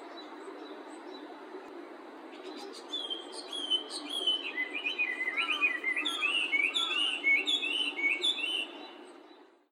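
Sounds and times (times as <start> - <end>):
whistled bird calls: 2.9 - 8.8.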